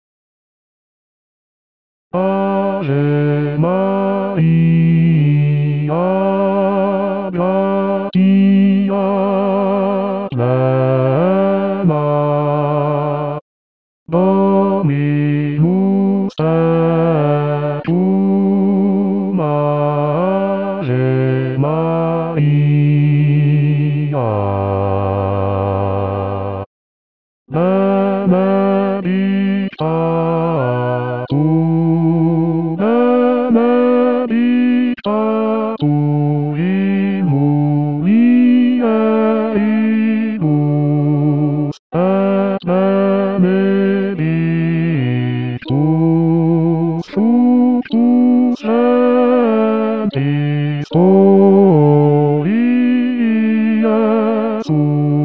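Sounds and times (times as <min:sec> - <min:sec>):
bass voice singing a hymn: 0:02.2 - 0:13.4, 0:14.1 - 0:26.7, 0:27.5 - 0:55.2.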